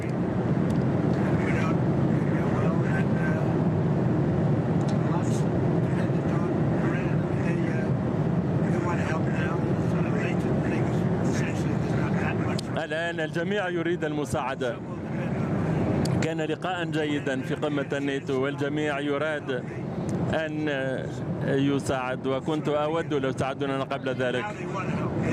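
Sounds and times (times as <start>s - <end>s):
aircraft engine roar inside cabin in flight: 0.0s - 25.3s
voices inside aircraft cabin: 0.0s - 25.3s
speech: 12.9s - 14.9s, 16.2s - 25.3s.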